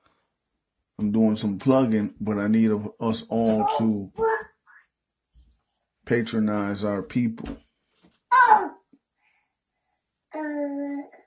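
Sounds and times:
speech: 0:01.0 - 0:04.2, 0:06.1 - 0:07.6
young child babbling: 0:03.4 - 0:04.8, 0:08.3 - 0:08.8, 0:10.3 - 0:11.2.

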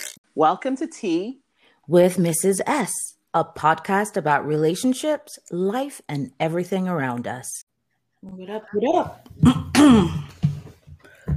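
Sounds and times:
speech: 0:00.4 - 0:07.6, 0:08.2 - 0:10.3
throat clearing: 0:09.4 - 0:10.4.

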